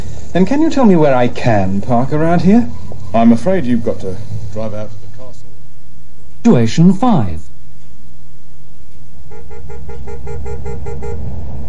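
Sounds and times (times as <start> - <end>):
speech: 0.4 - 5.0, 6.4 - 7.5, 9.9 - 11.3
car horn honking: 9.3 - 11.3.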